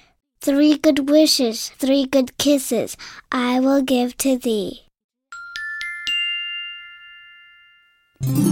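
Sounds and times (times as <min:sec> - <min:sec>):
speech: 0:00.4 - 0:04.8
small bell ringing: 0:05.3 - 0:08.4.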